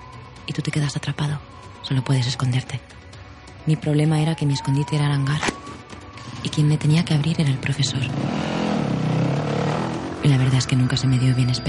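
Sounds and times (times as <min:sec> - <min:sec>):
speech: 0:00.5 - 0:03.0, 0:03.6 - 0:05.6, 0:06.4 - 0:08.6, 0:10.2 - 0:11.6
motorcycle engine revving: 0:07.4 - 0:10.9.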